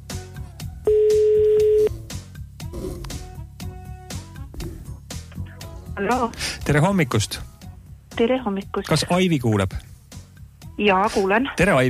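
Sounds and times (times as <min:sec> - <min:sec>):
outgoing telephone call ringback tone: 0:00.9 - 0:01.9
speech: 0:06.0 - 0:07.5, 0:08.2 - 0:09.9, 0:10.8 - 0:11.8.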